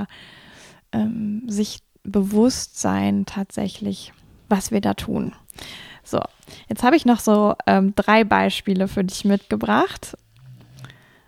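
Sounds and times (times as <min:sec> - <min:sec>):
speech: 0:00.0 - 0:10.2
dog snoring: 0:09.2 - 0:11.2.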